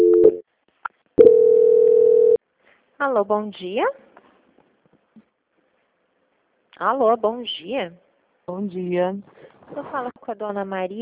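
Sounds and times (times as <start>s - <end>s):
telephone line tones during a call transfer: 1.2s - 2.4s
speech: 3.0s - 4.0s, 6.8s - 11.0s.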